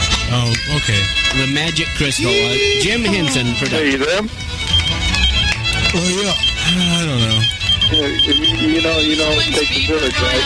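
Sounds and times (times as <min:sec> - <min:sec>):
speech: 0:00.4 - 0:04.8, 0:05.9 - 0:10.4
thin high electronic beeping: 0:02.2 - 0:03.5, 0:06.0 - 0:09.5.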